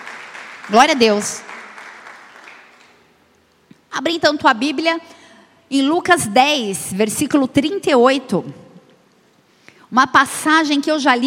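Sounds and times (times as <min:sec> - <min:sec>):
large crowd applauding: 0:00.0 - 0:03.0
speech: 0:00.7 - 0:01.5, 0:04.0 - 0:08.6, 0:09.9 - 0:11.2.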